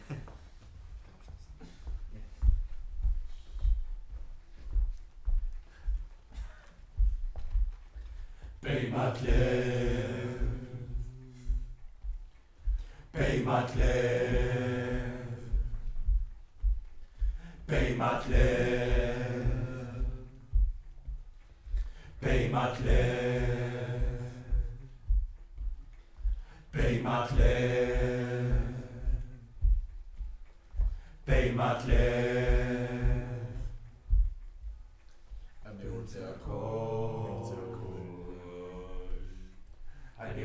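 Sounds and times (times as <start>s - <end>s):
distant choir singing: 2.5s - 40.4s.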